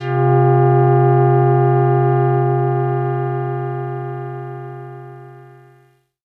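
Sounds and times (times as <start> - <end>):
soft multi brass synth: 0.0 - 5.9.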